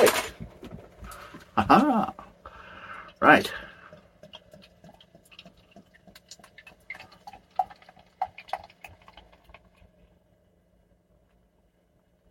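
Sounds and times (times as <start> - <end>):
speech: 1.6 - 2.2, 3.2 - 3.7
light amber beer pouring into a glass: 3.2 - 9.8.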